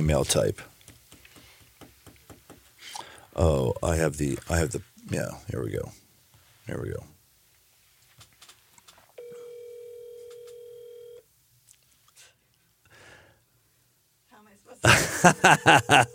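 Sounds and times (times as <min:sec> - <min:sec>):
speech: 0:00.0 - 0:00.7, 0:03.4 - 0:06.0, 0:06.7 - 0:07.1, 0:14.8 - 0:16.1
electronic phone call ringing tone: 0:09.2 - 0:11.2
laughter: 0:14.8 - 0:16.1.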